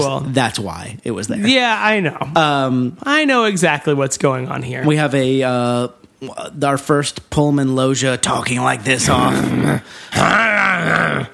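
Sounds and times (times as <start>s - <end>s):
speech: 0.0s - 11.3s
human voice imitating two dogs fighting over a soup bone: 9.0s - 11.3s.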